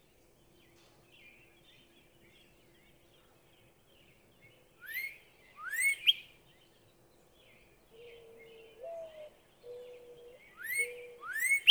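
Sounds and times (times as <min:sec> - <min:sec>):
Northern cardinal whistling song: 0:10.6 - 0:11.7.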